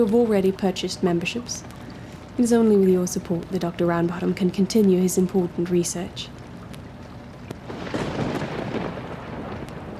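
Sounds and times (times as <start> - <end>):
speech: 0.0 - 1.8, 2.4 - 6.4
water drips and splashes: 0.0 - 9.9
heavy rain: 7.6 - 9.9.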